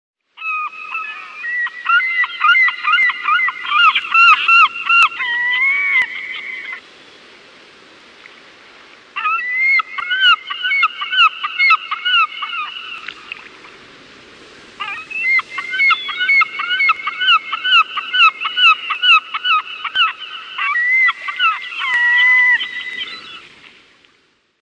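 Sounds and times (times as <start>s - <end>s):
Iceland gull: 0.4s - 6.8s, 9.2s - 13.1s, 14.8s - 23.5s.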